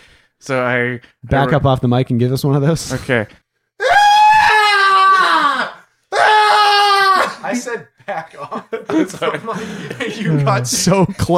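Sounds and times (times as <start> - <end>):
speech: 0.4 - 3.4, 7.5 - 11.3
person imitating elk screams: 3.8 - 7.4
laughter: 7.5 - 11.3.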